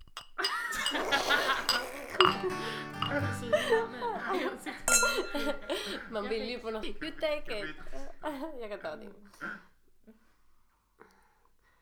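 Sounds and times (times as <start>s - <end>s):
glasses clinking in a toast: 0.1s - 6.5s
light laughter: 0.4s - 9.1s
murmur of voices: 1.3s - 8.9s
speech: 2.4s - 9.7s.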